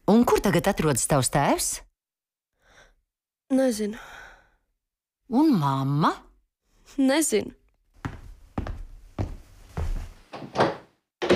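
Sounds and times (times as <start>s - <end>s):
speech: 0.4s - 1.9s, 3.5s - 4.2s, 5.3s - 6.2s, 6.9s - 7.6s
solid wooden thunks of an office door closing: 10.3s - 11.3s.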